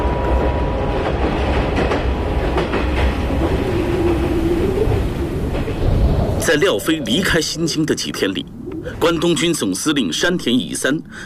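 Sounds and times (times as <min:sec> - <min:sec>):
train moving off with rolling wheels and rattling carriages: 0:00.0 - 0:11.2
train wheels clattering on the track: 0:00.4 - 0:07.1
speech: 0:06.5 - 0:11.2.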